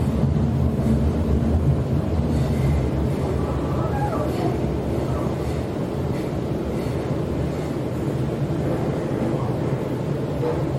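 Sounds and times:
Sydney train carriage rumble and droning hum: 0.0 - 10.7
faint train squeals: 3.4 - 5.4.

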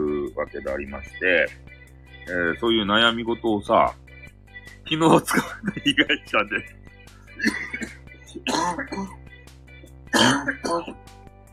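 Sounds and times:
speech: 0.4 - 4.0, 4.9 - 6.8, 7.4 - 9.2, 10.2 - 11.2
laughter: 4.9 - 6.6, 7.4 - 8.5
loud coughing and throat clearing: 5.2 - 6.3, 7.4 - 9.2, 10.1 - 11.0.

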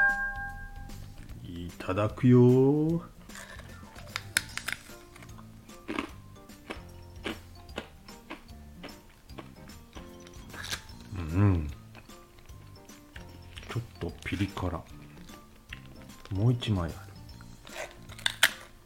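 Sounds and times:
speech: 1.7 - 3.2, 16.7 - 17.1
crisp shrimp rice cracker being chewed: 3.3 - 9.6, 10.2 - 14.4, 17.4 - 18.8
person humming: 11.1 - 11.7.

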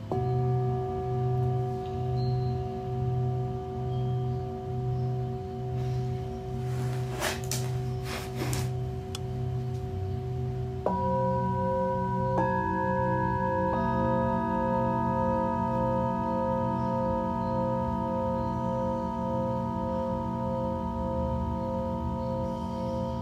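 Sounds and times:
bright singing bowl strikes: 0.0 - 5.8, 10.8 - 23.2
singing bowls ringing: 0.0 - 23.2.

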